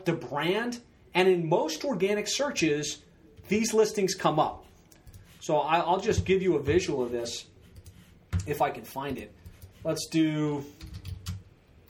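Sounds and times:
speech: 0:00.0 - 0:04.7, 0:05.4 - 0:07.5, 0:08.5 - 0:10.9
typing a search on a computer keyboard: 0:04.8 - 0:05.4, 0:07.7 - 0:08.6, 0:09.2 - 0:09.9, 0:10.7 - 0:11.8.

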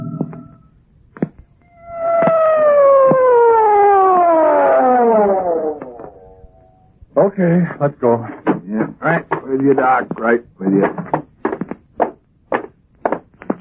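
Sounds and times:
siren wailing with pitch sliding downward: 0:01.6 - 0:07.0
dull thumps: 0:02.2 - 0:03.4, 0:08.3 - 0:13.5
speech: 0:07.2 - 0:11.2.

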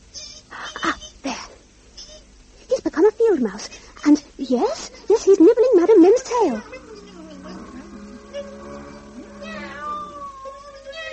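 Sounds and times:
steady tonal background: 0:02.7 - 0:11.1
speech: 0:03.4 - 0:05.5
angry cat yowling and snarling: 0:06.3 - 0:11.1.

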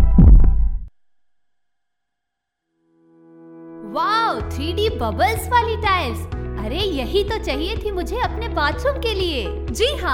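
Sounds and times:
deep booming heartbeat sound effect: 0:00.0 - 0:00.9
speech: 0:04.5 - 0:10.1.

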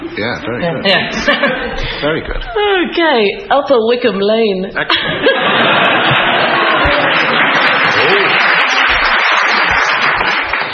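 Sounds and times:
speech: 0:00.2 - 0:06.3
laughter: 0:00.9 - 0:02.6, 0:04.8 - 0:09.6
audience clapping: 0:05.5 - 0:10.7.

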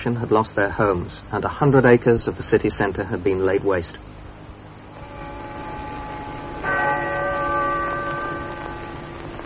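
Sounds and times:
speech: 0:00.0 - 0:04.2
steady hiss: 0:00.0 - 0:09.4
deep stroke of a cathedral bell: 0:05.0 - 0:09.4.

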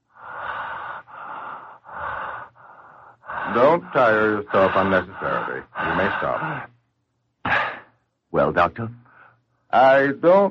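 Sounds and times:
rapid breathing through the mouth during a doctor's examination: 0:00.0 - 0:06.7
speech: 0:03.5 - 0:06.7, 0:08.3 - 0:09.0, 0:09.7 - 0:10.4.

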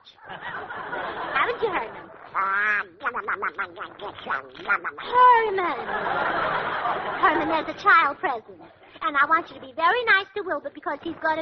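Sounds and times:
laughter: 0:00.1 - 0:07.9
speech: 0:00.1 - 0:11.4
duck quacking: 0:01.3 - 0:06.2.

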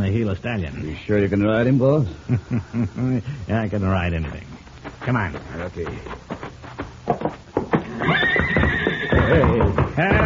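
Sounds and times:
speech: 0:00.1 - 0:06.4, 0:09.3 - 0:10.2
stallion kicking at its stall: 0:06.1 - 0:10.2
stallion whinnying and neighing: 0:07.8 - 0:10.2.

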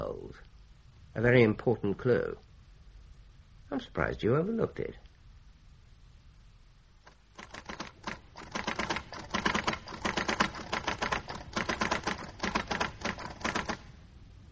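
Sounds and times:
speech: 0:01.2 - 0:02.5, 0:03.7 - 0:05.0
typewriter keystrokes clattering: 0:07.1 - 0:13.9.

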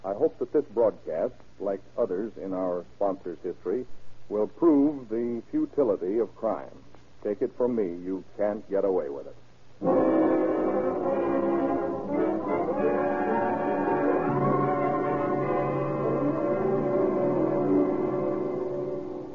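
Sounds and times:
speech: 0:00.1 - 0:10.2
siren wailing on a speeding sheriff's car: 0:10.8 - 0:19.3.

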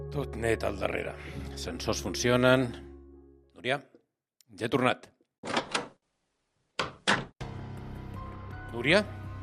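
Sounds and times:
speech: 0:00.1 - 0:02.9, 0:03.6 - 0:03.9, 0:04.5 - 0:05.6, 0:08.8 - 0:09.2
door clunks: 0:05.4 - 0:06.0, 0:06.8 - 0:07.4
door creaking as it swings or slides open: 0:05.4 - 0:06.0.

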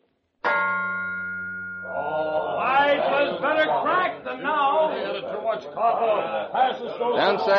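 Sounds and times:
large bell struck and ringing: 0:00.4 - 0:03.0
several people talking: 0:01.9 - 0:07.5.

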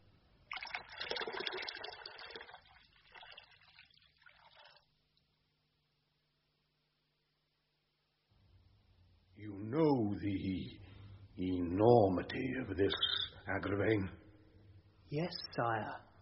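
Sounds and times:
faint low hum: 0:00.0 - 0:16.2
water being poured: 0:00.4 - 0:04.9
speech: 0:12.2 - 0:14.2, 0:15.1 - 0:16.1.

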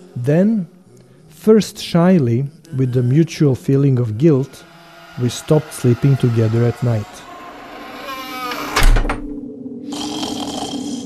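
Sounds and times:
speech: 0:00.2 - 0:00.8, 0:01.4 - 0:07.3
loud rasping snore: 0:03.9 - 0:08.8, 0:09.9 - 0:11.0.

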